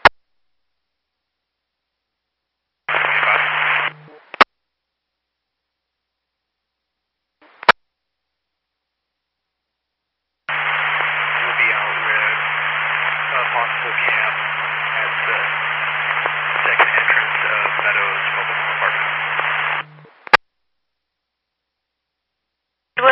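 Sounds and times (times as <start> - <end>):
bursts of harsh radio static: 2.9 - 4.5, 7.4 - 7.8, 10.5 - 20.4.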